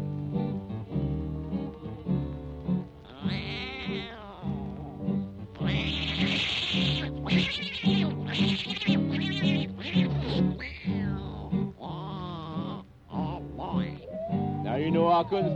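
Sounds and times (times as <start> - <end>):
musical backing: 0.0 - 15.5
voices imitating an old tomcat yowling and meowing: 3.0 - 5.0, 5.6 - 15.5
speech: 15.2 - 15.5.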